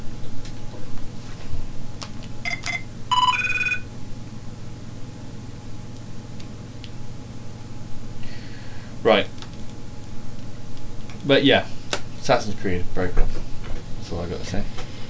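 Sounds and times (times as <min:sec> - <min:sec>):
steady low hum: 0:00.0 - 0:15.0
mobile phone ringing with bright electronic chirping tones: 0:02.4 - 0:03.9
speech: 0:09.0 - 0:09.3, 0:11.3 - 0:13.5, 0:14.1 - 0:14.8.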